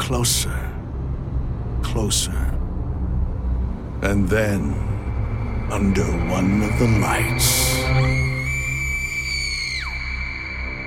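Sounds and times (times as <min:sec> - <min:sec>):
constant low rumbling background: 0:00.0 - 0:10.8
speech: 0:00.1 - 0:00.8, 0:02.0 - 0:02.6, 0:04.0 - 0:04.9, 0:05.7 - 0:08.2
shrill sustained scream of horror: 0:06.7 - 0:10.8.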